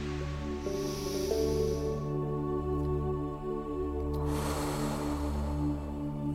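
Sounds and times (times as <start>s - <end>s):
deep belly breath in and out: 0.0s - 2.4s, 4.1s - 6.3s
soft sustained musical tones: 0.0s - 6.3s.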